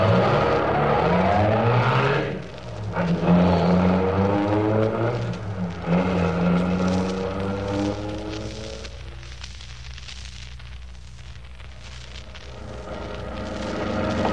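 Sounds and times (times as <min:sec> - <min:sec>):
car engine revving and accelerating: 0:00.0 - 0:08.8, 0:12.5 - 0:14.3.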